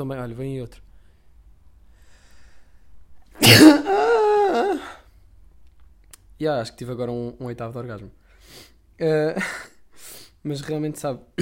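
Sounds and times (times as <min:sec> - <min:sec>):
speech: 0:00.0 - 0:00.9, 0:03.4 - 0:04.9, 0:06.4 - 0:09.7, 0:10.4 - 0:11.4
sneeze: 0:03.4 - 0:04.2.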